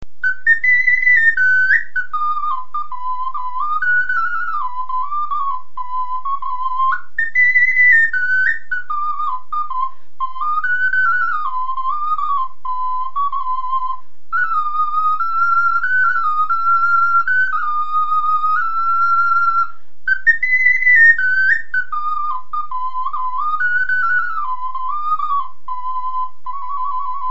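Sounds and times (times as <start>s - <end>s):
small clay flute melody: 0.2s - 27.2s.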